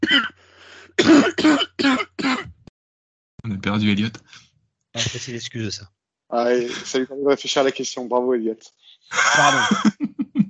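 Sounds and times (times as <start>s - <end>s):
speech: 1.0s - 2.0s, 3.7s - 4.4s, 5.0s - 10.0s
person clearing throat in short raspy bursts: 1.0s - 2.6s, 9.2s - 9.8s
laughter: 5.0s - 5.4s, 6.4s - 10.4s.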